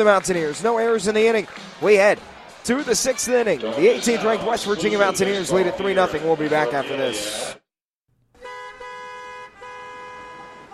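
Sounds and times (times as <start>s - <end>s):
speech: 0.0s - 7.5s
car horns honking in traffic: 8.4s - 10.7s.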